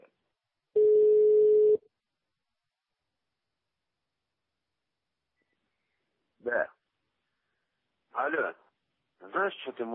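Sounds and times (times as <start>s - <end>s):
telephone line tone beep while a call is placed: 0.8s - 1.8s
speech: 8.2s - 8.6s, 9.4s - 9.9s.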